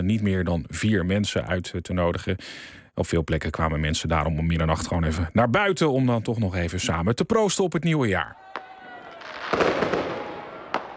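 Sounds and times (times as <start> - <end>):
speech: 0.0 - 8.4, 9.3 - 10.0
steady hiss: 0.2 - 7.3
fireworks going off at midnight on New Year's Eve in Utrecht: 8.5 - 10.9.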